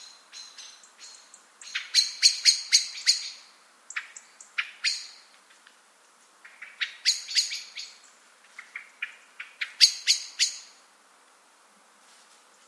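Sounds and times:
Eurasian blackbird Turdus merula giving metallic chink calls: 0:00.0 - 0:05.3, 0:06.4 - 0:10.8.

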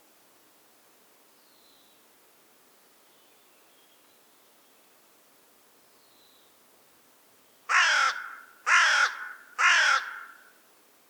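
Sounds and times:
Carrion crow Corvus corone cawing: 0:07.7 - 0:10.5.

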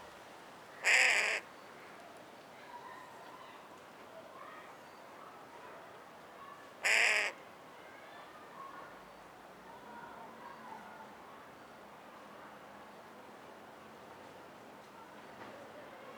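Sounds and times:
carrion crow Corvus corone cawing: 0:00.8 - 0:01.4, 0:06.8 - 0:07.4.

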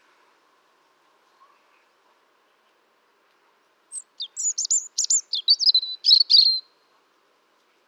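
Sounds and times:
European robin, Erithacus rubecula, singing: 0:03.9 - 0:06.7.

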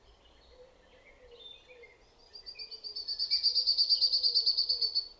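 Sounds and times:
common chaffinch Fringilla coelebs singing a fast run of bright high chirps: 0:00.1 - 0:05.1.

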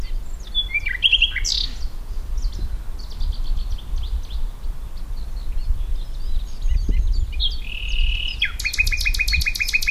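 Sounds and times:
common nightingale Luscinia megarhynchos song: 0:00.0 - 0:09.8.

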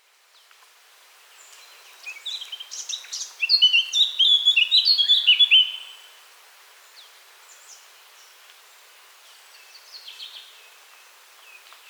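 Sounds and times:
Eurasian blackcap song: 0:01.5 - 0:05.9.

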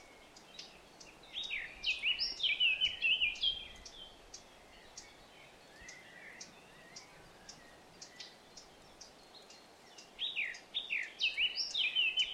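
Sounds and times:
Eurasian blackcap chirps: 0:00.0 - 0:12.3.

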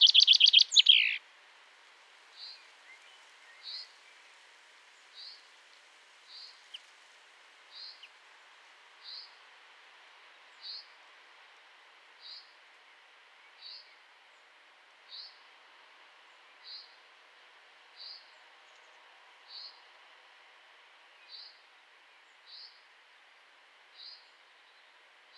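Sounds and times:
common chaffinch call: 0:00.0 - 0:01.2
steady background hiss: 0:00.0 - 0:25.3.

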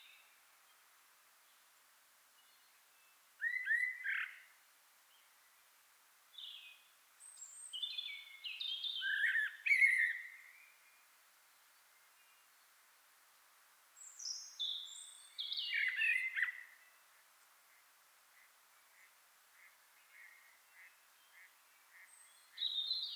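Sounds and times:
common blackbird Turdus merula singing fluted warbles and squeaky notes: 0:03.4 - 0:04.4, 0:07.7 - 0:10.4, 0:14.2 - 0:16.7, 0:20.8 - 0:23.1.

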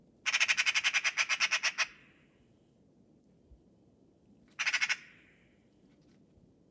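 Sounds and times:
Eurasian magpie Pica pica uttering harsh raspy notes: 0:00.3 - 0:02.0, 0:04.6 - 0:05.1.

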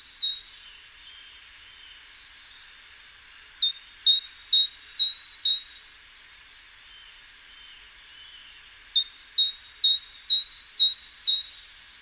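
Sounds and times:
faint background hiss: 0:00.0 - 0:11.9
great tit Parus major song: 0:03.6 - 0:05.8, 0:09.0 - 0:11.7.

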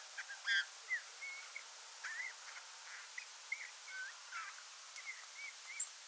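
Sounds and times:
soft background hiss: 0:00.0 - 0:06.0
Eurasian bullfinch Pyrrhula pyrrhula quiet whistled notes and scratchy chirps: 0:00.2 - 0:02.4, 0:03.5 - 0:06.0.

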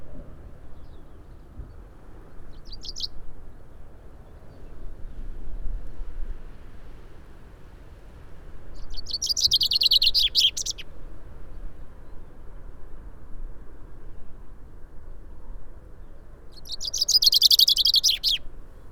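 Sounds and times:
low steady background noise: 0:00.0 - 0:18.9
common chaffinch song: 0:00.6 - 0:04.9, 0:08.6 - 0:12.4, 0:16.1 - 0:18.6.

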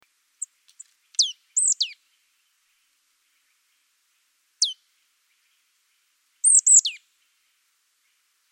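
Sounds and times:
marsh tit Poecile palustris calls: 0:00.4 - 0:02.0, 0:06.4 - 0:07.0.

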